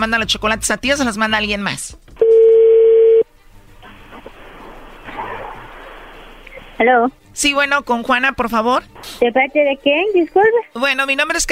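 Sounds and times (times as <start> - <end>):
speech: 0.0 - 2.0, 6.8 - 11.5
telephone line tone of a call being dialed: 2.2 - 3.2.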